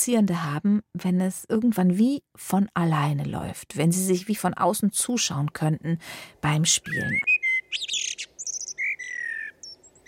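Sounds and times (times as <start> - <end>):
speech: 0.0 - 8.0
songbird singing early in the morning: 6.7 - 10.0.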